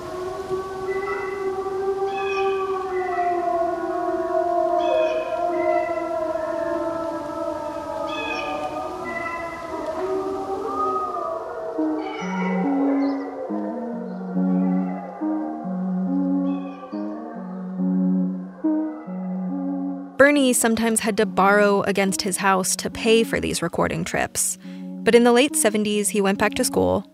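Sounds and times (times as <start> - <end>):
crow call morphing into a wolf howl: 0.0 - 20.2
speech: 20.3 - 27.1.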